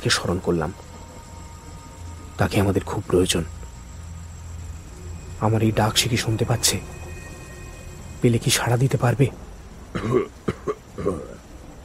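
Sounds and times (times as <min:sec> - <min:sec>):
speech: 0:00.0 - 0:00.9, 0:02.4 - 0:03.6, 0:05.4 - 0:07.0, 0:08.2 - 0:11.3
soft coughs behind the narrator: 0:10.0 - 0:11.4
throat-clearing: 0:10.0 - 0:11.4.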